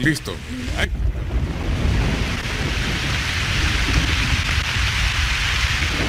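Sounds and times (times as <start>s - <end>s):
heavy rain pouring in a tremendous storm: 0.0s - 6.0s
low rumble of thunder: 0.4s - 6.0s.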